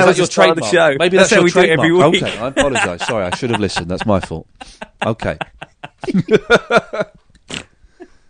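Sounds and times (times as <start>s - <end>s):
speech: 0.0s - 7.7s
voiced laugh-like bursts: 2.0s - 7.7s
person snorting through the nose: 7.5s - 7.8s
quiet breathing: 7.8s - 8.2s.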